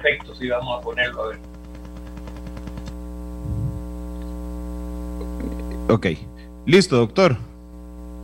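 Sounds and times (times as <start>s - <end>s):
speech: 0.0s - 1.6s, 5.9s - 7.5s
low thumps: 0.0s - 4.0s
electrical interference hum on the line: 0.0s - 8.2s.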